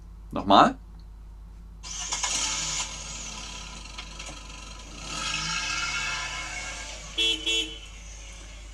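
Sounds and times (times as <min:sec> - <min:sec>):
speech: 0:00.3 - 0:00.8
car engine starting and revving: 0:01.8 - 0:08.7
car horn toots: 0:06.6 - 0:08.2.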